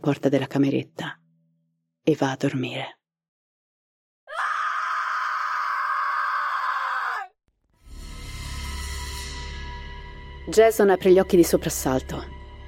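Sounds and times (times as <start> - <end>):
speech: 0.0 - 1.2, 2.0 - 3.0, 10.5 - 12.4
woman screaming from the floor above: 4.3 - 7.4.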